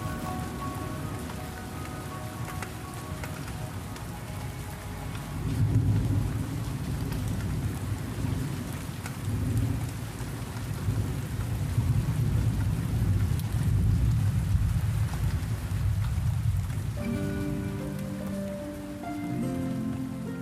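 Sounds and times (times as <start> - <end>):
sustained musical tones: 0.0 - 6.6, 17.0 - 20.3
deep rolls of thunder rumbling: 0.0 - 20.3
steady heavy rain: 0.0 - 20.3.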